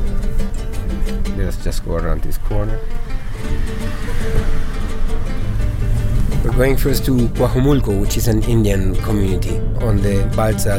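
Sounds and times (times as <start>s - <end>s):
car engine and tire rumble on the road: 0.0s - 10.7s
speech: 1.4s - 5.7s, 6.4s - 10.7s.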